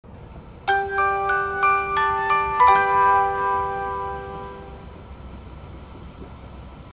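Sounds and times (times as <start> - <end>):
chime: 0.7 - 4.8.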